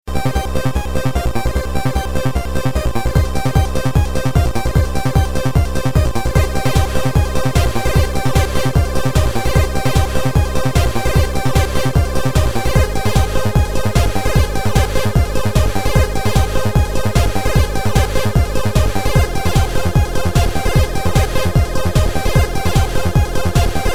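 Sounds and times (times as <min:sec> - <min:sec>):
synthesizer sound: 0:00.1 - 0:23.9.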